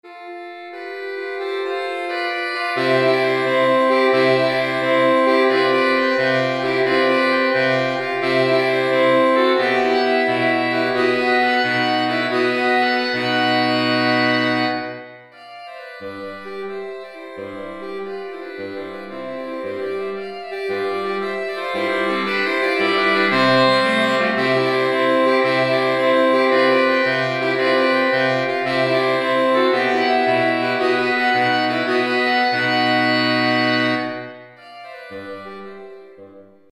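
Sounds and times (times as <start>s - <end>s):
saxophone quintet playing: 0.1s - 36.7s.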